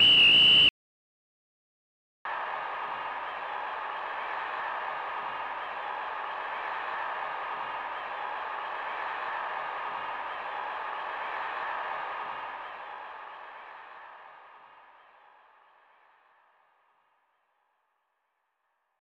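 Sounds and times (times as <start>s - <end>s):
SNES video game whistle: 0.0s - 0.7s
SNES video game crowd cheering: 2.3s - 16.6s.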